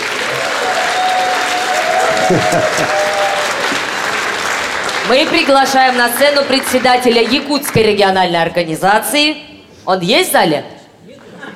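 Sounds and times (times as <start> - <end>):
audience applause: 0.0 - 7.8
laughter: 2.0 - 3.4, 11.1 - 11.5
speech: 2.3 - 3.0, 5.1 - 10.8.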